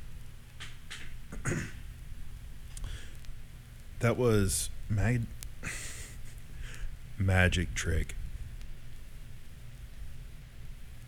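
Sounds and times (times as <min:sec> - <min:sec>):
low hiss: 0:00.0 - 0:11.0
short rough throat clearing: 0:01.4 - 0:01.8
speech: 0:04.0 - 0:05.4, 0:07.2 - 0:08.2.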